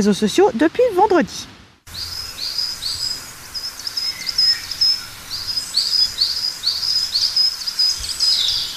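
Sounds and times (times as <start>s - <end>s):
speech: 0.0s - 2.1s
coal tit song: 1.9s - 8.7s.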